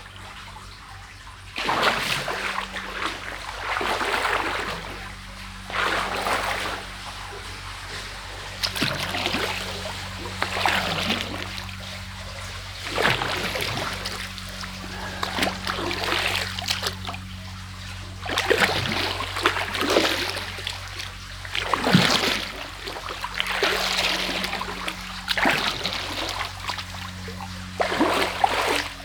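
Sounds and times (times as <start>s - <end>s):
steady low hum: 0.0s - 29.0s
sea waves surging and breaking with spray on an island in the Maldives: 1.6s - 29.0s.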